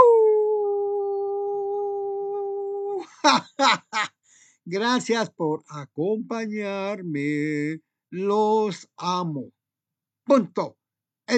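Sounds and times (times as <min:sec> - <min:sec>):
human voice howling and yelping like a dog: 0:00.0 - 0:03.1
speech: 0:03.2 - 0:04.1, 0:04.7 - 0:09.6, 0:10.3 - 0:11.3.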